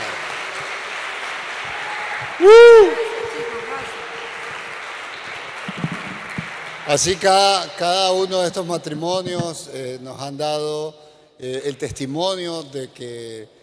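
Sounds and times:
audience applauding: 0:00.0 - 0:07.4
loud brief cheer or whistle: 0:01.7 - 0:04.6
speech: 0:02.4 - 0:03.1, 0:06.9 - 0:13.6.

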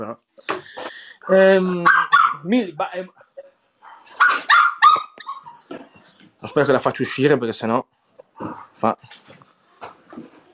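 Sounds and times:
speech: 0:00.0 - 0:03.2, 0:06.4 - 0:09.3
dog barking and yipping: 0:01.6 - 0:02.5, 0:03.8 - 0:05.7.

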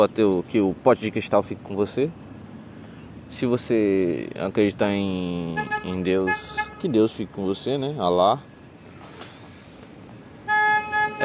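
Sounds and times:
speech: 0:00.0 - 0:02.2, 0:03.3 - 0:08.5
low road rumble: 0:00.0 - 0:11.2
car horn honking: 0:05.5 - 0:07.0, 0:10.4 - 0:11.2.

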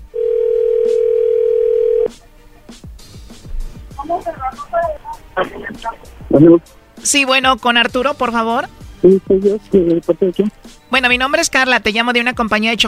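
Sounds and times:
telephone dial tone while redialing: 0:00.1 - 0:02.1
speech: 0:04.5 - 0:12.8.

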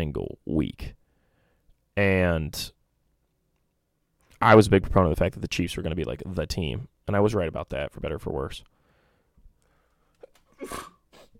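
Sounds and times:
speech: 0:00.0 - 0:01.0, 0:02.0 - 0:02.8, 0:04.4 - 0:08.7, 0:10.6 - 0:10.9
sneeze: 0:10.5 - 0:11.3.

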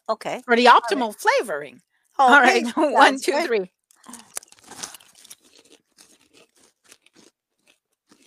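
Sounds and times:
speech: 0:00.1 - 0:04.2
crunching bite into a crisp chocolate snack: 0:03.9 - 0:08.2.

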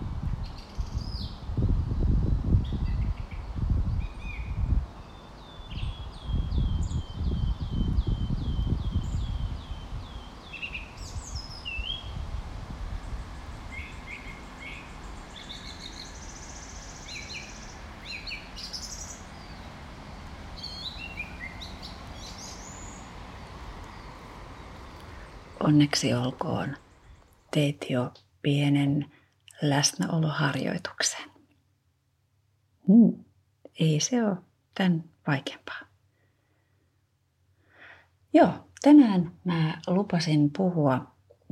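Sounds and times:
rustling windy low rumble: 0:00.0 - 0:28.7
birds singing and chirping outdoors: 0:02.6 - 0:12.2, 0:13.0 - 0:19.8, 0:20.5 - 0:27.6
speech: 0:25.7 - 0:26.8, 0:27.6 - 0:31.3, 0:32.9 - 0:33.1, 0:33.8 - 0:35.9, 0:38.3 - 0:41.4.

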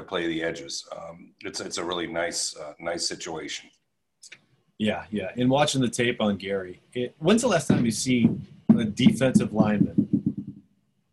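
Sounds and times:
speech: 0:00.1 - 0:10.0
ball bouncing on a floor overhead: 0:07.7 - 0:10.6.

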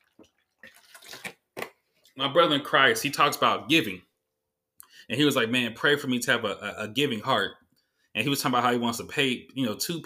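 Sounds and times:
slurping and swallowing: 0:00.0 - 0:01.5
person sipping water: 0:00.0 - 0:02.2
speech: 0:02.2 - 0:04.1, 0:05.1 - 0:07.6, 0:08.2 - 0:10.0.

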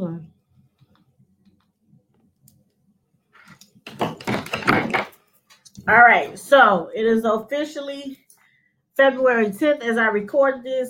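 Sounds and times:
chair shifting, creaking and scraping: 0:03.3 - 0:06.4
speech: 0:05.9 - 0:08.2, 0:09.0 - 0:10.8.

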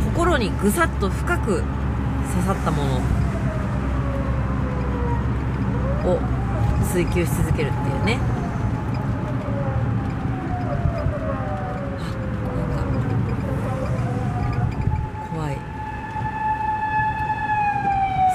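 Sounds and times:
constant traffic rumble: 0:00.0 - 0:18.3
unmarked police car siren passing at great speed: 0:00.0 - 0:18.3
speech: 0:00.3 - 0:03.2, 0:06.0 - 0:08.4.

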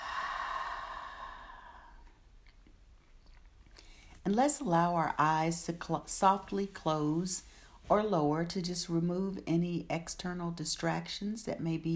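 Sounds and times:
soft breath out during a guided breathing exercise: 0:00.0 - 0:02.1
speech: 0:04.3 - 0:11.9.

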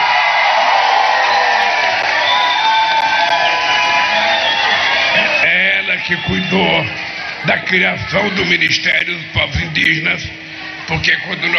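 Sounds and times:
audience at a speech applauding a government minister: 0:00.0 - 0:07.4
audience at a speech cheering with whoops and shouts: 0:00.0 - 0:08.6
speech: 0:06.1 - 0:11.5.

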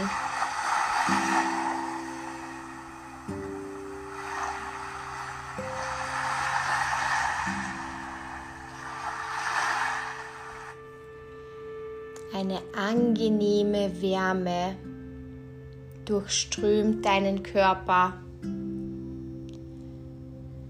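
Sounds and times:
ocean surf rushing onto a deserted beach: 0:00.0 - 0:10.8
soft sustained music chords: 0:00.0 - 0:20.6
speech: 0:12.5 - 0:14.8, 0:16.1 - 0:18.6.

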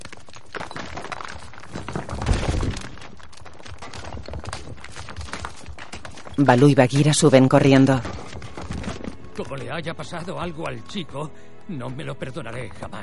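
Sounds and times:
dull thuds and heavy knocks of rocks in collapsed temple ruins: 0:00.0 - 0:07.2, 0:07.9 - 0:09.5
rocks scraping and rubble shifting as apes shove them aside: 0:00.0 - 0:10.3
speech: 0:06.4 - 0:08.2, 0:09.4 - 0:13.0.

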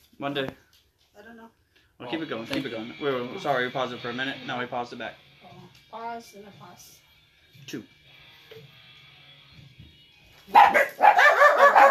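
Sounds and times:
speech: 0:00.2 - 0:00.6, 0:01.2 - 0:07.0, 0:07.6 - 0:08.8, 0:10.5 - 0:11.2
dog barking: 0:10.5 - 0:11.8.

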